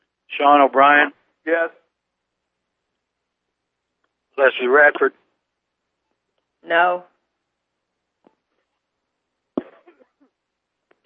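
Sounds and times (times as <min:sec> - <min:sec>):
speech: 0:00.4 - 0:01.8, 0:04.4 - 0:05.2, 0:06.6 - 0:07.1
person coughing during a roll-call vote at a meeting: 0:09.6 - 0:10.2.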